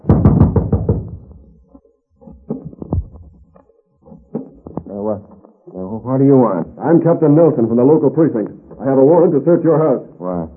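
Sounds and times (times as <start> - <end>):
heavy knocking on a door: 0.0 - 1.4
speech: 6.1 - 10.5.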